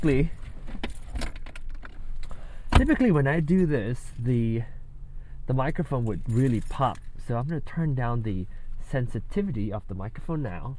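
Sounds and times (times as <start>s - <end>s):
speech: 0.0s - 0.4s, 2.8s - 4.8s, 5.5s - 10.7s
keys jangling as someone gets into a car: 0.0s - 4.4s, 5.9s - 7.2s.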